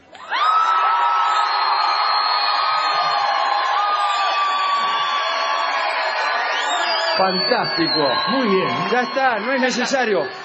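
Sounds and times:
front rows of audience shouting greetings and cheering: 0.0 - 10.4
speech: 7.2 - 10.4.

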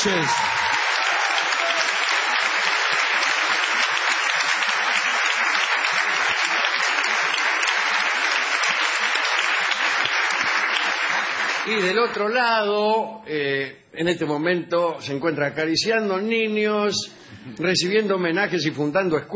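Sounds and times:
speech: 0.0 - 0.8, 11.7 - 19.3
audience applause: 0.0 - 12.4.

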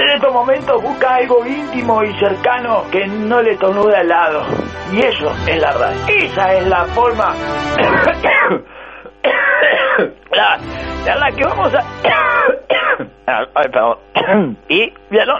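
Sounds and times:
speech: 0.2 - 8.8, 9.6 - 12.5, 13.3 - 15.3
person clearing throat: 7.8 - 10.6, 11.6 - 13.2, 14.2 - 14.7
person coughing: 7.8 - 10.6, 11.6 - 13.2, 14.2 - 14.6.

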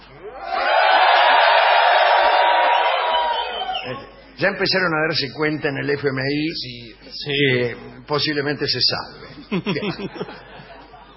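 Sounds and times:
group of people shouting and whooping: 0.2 - 3.9
speech: 4.4 - 10.5
laughter: 9.2 - 11.1.

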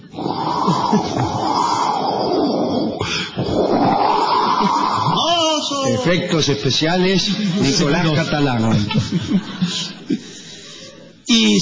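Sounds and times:
voice imitating a howling windstorm: 0.0 - 6.1
speech: 0.7 - 1.5, 6.0 - 10.4, 11.3 - 11.5
laughter: 0.7 - 1.6, 7.1 - 11.2.

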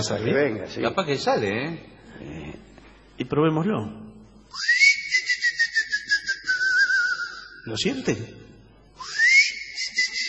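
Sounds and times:
speech: 0.0 - 4.8, 7.6 - 8.4
person whistling a sustained high note to lure a cricket: 4.5 - 7.6, 9.0 - 10.2.

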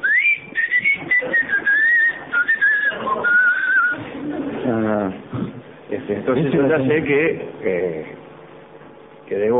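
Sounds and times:
person whistling as a warning signal: 0.0 - 4.0
noisy background: 0.0 - 9.5
speech: 6.1 - 8.2, 9.3 - 9.5.

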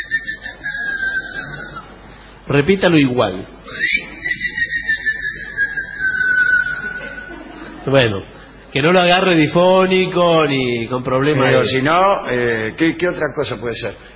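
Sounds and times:
person whistling a short signal-like tune: 0.0 - 1.8, 3.7 - 7.3
speech: 2.5 - 3.8, 7.9 - 14.1
laughter: 6.3 - 8.6.

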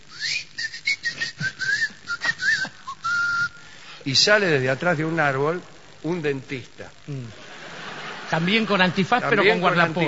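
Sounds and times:
person imitating a loud summoning whistle by voice: 0.1 - 3.6
speech: 4.0 - 7.4, 8.3 - 10.0
laughter: 7.3 - 10.0.

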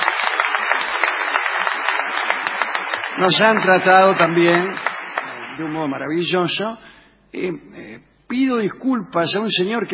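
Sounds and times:
theater audience applause: 0.0 - 5.9
speech: 3.2 - 4.8, 5.6 - 9.9.

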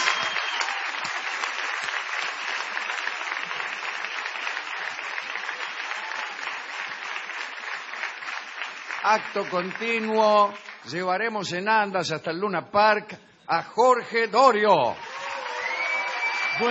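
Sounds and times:
crowd applauding: 0.0 - 11.1, 15.0 - 16.6
speech: 9.0 - 15.0.

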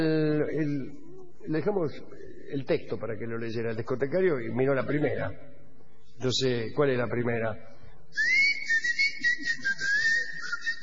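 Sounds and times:
faint hiss: 0.0 - 10.8
speech: 1.5 - 5.6, 6.2 - 8.4
person whistling a short melodic phrase: 8.2 - 10.8.

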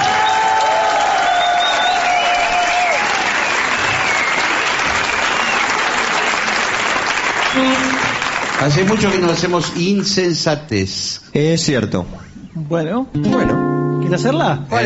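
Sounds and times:
large audience applause welcoming a trumpet player: 0.0 - 10.3
speech: 8.6 - 14.8.

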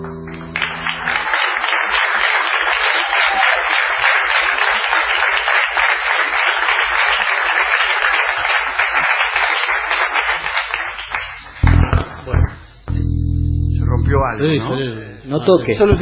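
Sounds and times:
hands clapping after a song: 0.2 - 12.7
heavy low thumps: 11.6 - 14.4
speech: 14.4 - 16.0.

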